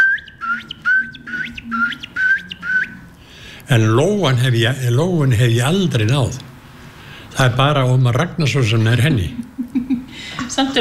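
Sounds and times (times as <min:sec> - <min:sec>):
common ringed plover calling on a gravel bar by a river: 0:00.0 - 0:03.1
speech: 0:03.7 - 0:06.5, 0:07.4 - 0:09.6, 0:10.6 - 0:10.7.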